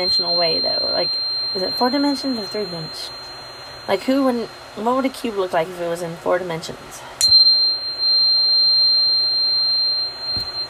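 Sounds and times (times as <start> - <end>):
speech: 0.0 - 3.3, 3.9 - 7.3
high-pitched sine tone: 0.0 - 5.1, 7.2 - 10.6.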